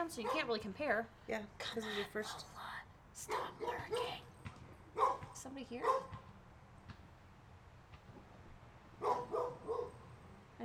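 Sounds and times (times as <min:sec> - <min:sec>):
speech: 0:00.0 - 0:04.2, 0:05.0 - 0:06.2
dog barking: 0:00.2 - 0:00.6, 0:03.3 - 0:04.2, 0:05.0 - 0:06.2, 0:09.0 - 0:10.0.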